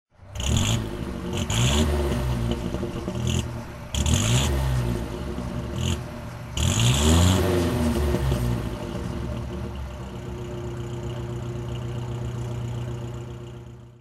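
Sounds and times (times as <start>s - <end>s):
Austin Seven Pearl car engine throttle: 0.1s - 14.0s.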